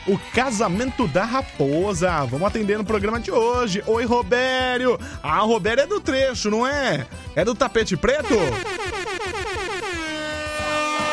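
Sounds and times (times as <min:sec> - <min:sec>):
speech: 0:00.0 - 0:08.8
truck air horn blaring: 0:08.2 - 0:11.1.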